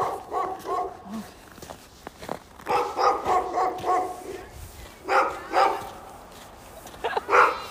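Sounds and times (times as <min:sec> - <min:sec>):
dog barking: 0:00.0 - 0:01.3, 0:02.6 - 0:06.1, 0:07.2 - 0:07.6.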